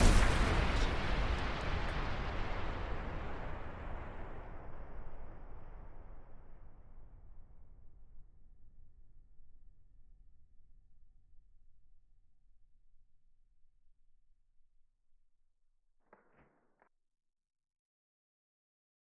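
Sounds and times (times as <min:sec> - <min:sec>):
explosion blast: 0:00.0 - 0:07.8.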